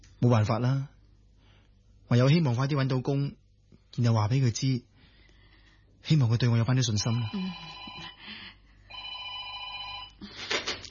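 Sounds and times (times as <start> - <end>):
speech: 0.2 - 1.0, 2.1 - 4.9, 6.0 - 8.1
telephone bell ringing: 7.0 - 8.2, 8.9 - 10.2.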